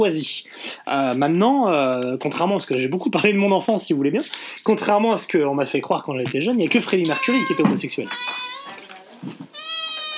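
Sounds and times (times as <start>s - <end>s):
speech: 0.0s - 8.4s, 9.2s - 9.6s
cat meowing loudly: 7.0s - 10.1s.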